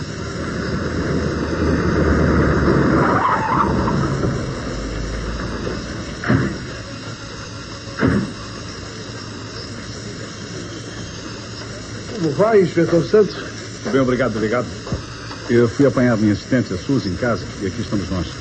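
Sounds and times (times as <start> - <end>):
car tires hissing while braking to a halt: 0.0 - 6.8
car engine rumbling arriving at a building: 0.0 - 8.7
speech: 12.4 - 14.8, 15.5 - 18.3.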